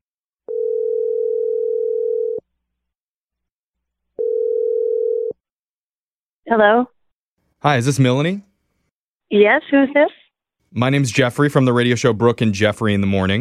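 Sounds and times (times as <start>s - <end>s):
telephone dial tone: 0.5s - 2.4s, 4.2s - 5.4s
speech: 6.5s - 6.9s, 7.6s - 8.5s, 9.3s - 10.2s, 10.7s - 13.3s.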